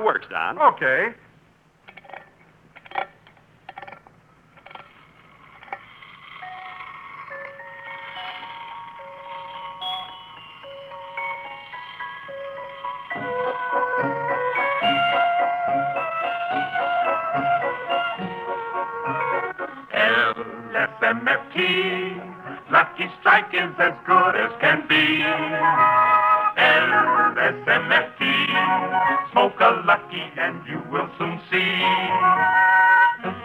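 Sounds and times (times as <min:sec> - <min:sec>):
speech: 0:00.1 - 0:01.2, 0:29.8 - 0:32.0
wind-up toy merry-go-round clicking: 0:01.9 - 0:15.2
tinkling music-box-style melody from a wind-up toy merry-go-round: 0:05.0 - 0:33.4.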